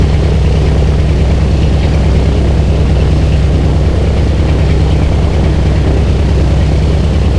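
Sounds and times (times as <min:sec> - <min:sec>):
B-17 aircraft engines heard from the rear: 0:00.0 - 0:07.3.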